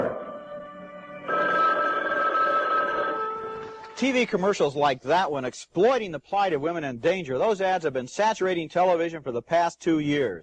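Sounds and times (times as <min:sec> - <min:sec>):
telephone ringing in a movie trailer: 0:01.2 - 0:03.9
speech: 0:04.0 - 0:10.4.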